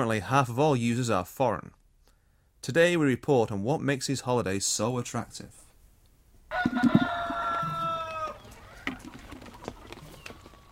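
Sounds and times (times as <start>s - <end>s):
speech: 0.0s - 1.8s, 2.6s - 5.6s, 6.6s - 7.0s
rooster crowing on a mixed farm in Saitama Prefecture: 6.5s - 9.1s
small farmyard knocks: 6.5s - 10.6s
chickens clucking softly on a mixed farm in Saitama Prefecture: 6.5s - 10.7s.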